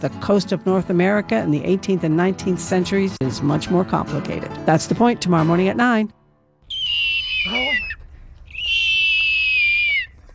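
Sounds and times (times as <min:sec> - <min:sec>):
speech: 0:00.0 - 0:06.2, 0:07.4 - 0:07.9
person imitating a hawk's cry: 0:06.7 - 0:10.2.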